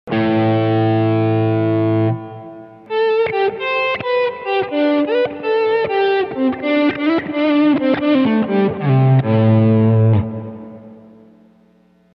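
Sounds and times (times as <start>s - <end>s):
guitar swell effect: 0.1s - 11.4s.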